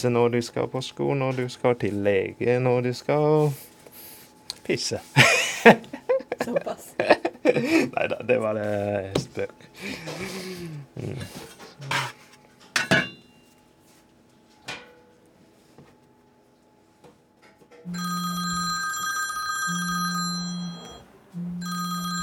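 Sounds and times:
speech: 0.0 - 3.7, 4.7 - 5.8, 6.4 - 12.1
laughter: 5.2 - 8.0
dishes clinking and clattering: 11.9 - 13.4
mobile phone ringtone: 17.9 - 22.2.

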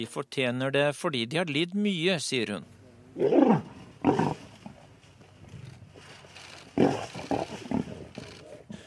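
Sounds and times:
speech: 0.0 - 4.3
male lion roaring to a female lion: 3.2 - 4.5, 6.8 - 8.6.

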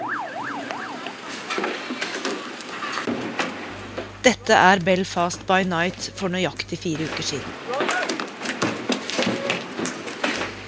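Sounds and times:
fireworks banging in a street riot: 1.0 - 10.6
speech: 4.2 - 7.6
roaring crowd shouting in a street riot at night in Belfast: 7.4 - 8.3, 9.1 - 9.8.

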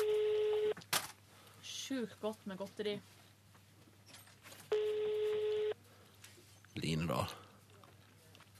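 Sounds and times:
buzzing electronic phone ring tone: 0.0 - 0.8, 4.7 - 5.8
speech: 1.9 - 3.2, 6.8 - 7.4.

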